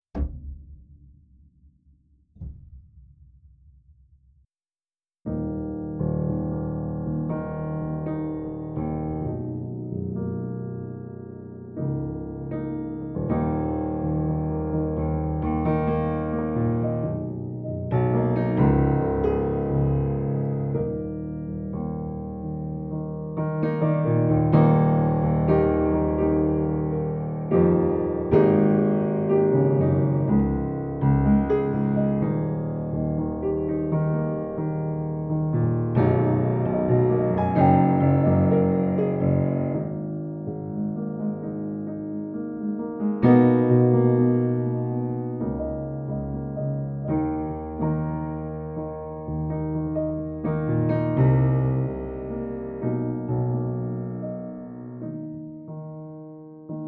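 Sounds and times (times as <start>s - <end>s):
Fazioli concert grand piano: 5.2s - 56.8s.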